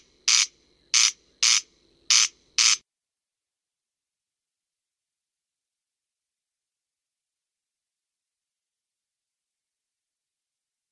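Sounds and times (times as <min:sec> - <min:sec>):
corn crake rasping crex-crex calls in France: 0:00.0 - 0:02.8.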